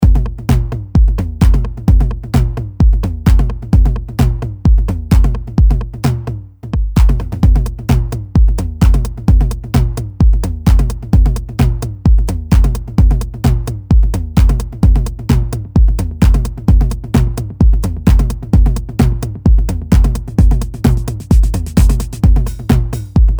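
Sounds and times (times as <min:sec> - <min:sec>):
TR-909 drum machine: 0:00.0 - 0:23.3.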